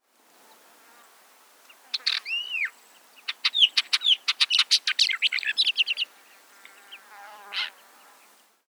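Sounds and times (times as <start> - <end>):
capped wheatear calling: 0.5 - 8.4.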